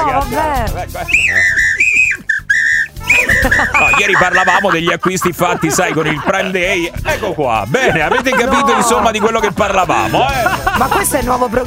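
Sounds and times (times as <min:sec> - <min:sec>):
speech: 0:00.2 - 0:01.6, 0:03.4 - 0:11.6
shrill dog whistle blown: 0:01.1 - 0:05.2
laughter: 0:03.0 - 0:11.4.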